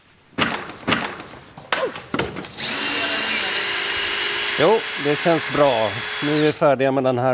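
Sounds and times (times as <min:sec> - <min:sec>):
knocks and clattering thuds of an election pavilion being dismantled: 0:00.3 - 0:02.6
power tool whirring: 0:02.5 - 0:06.6
speech: 0:04.6 - 0:07.3.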